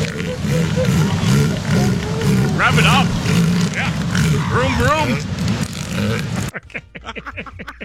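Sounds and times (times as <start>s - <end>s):
elephant seal mating call: 0.0s - 5.0s
laughter: 0.0s - 5.2s, 5.9s - 7.8s
speech: 6.2s - 7.8s.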